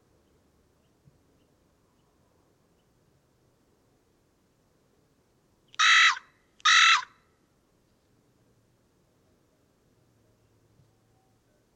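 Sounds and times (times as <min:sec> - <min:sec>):
faint low background noise: 0:00.0 - 0:11.7
Corvus corone carrion crow cawing: 0:05.8 - 0:07.1.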